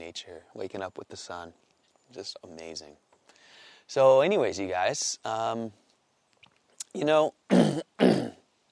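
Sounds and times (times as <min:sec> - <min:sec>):
speech: 0:00.1 - 0:03.1, 0:03.9 - 0:05.8, 0:06.9 - 0:08.3
person clearing phlegm from throat: 0:07.5 - 0:08.4.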